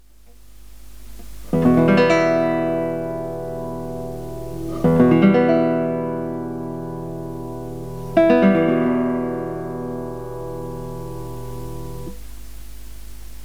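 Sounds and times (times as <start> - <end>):
guitar chord: 1.5 - 12.2.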